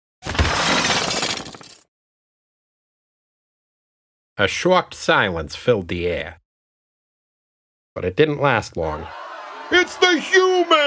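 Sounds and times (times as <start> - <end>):
huge mirrored ball crashing to the ground and shattering: 0.2 - 1.9
speech: 4.4 - 6.4, 8.0 - 10.8
laughter: 8.9 - 10.8.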